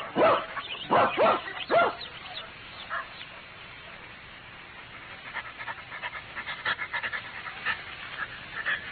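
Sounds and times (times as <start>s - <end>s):
dog barking: 0.0s - 2.1s, 2.9s - 3.2s
dog panting: 4.7s - 8.8s.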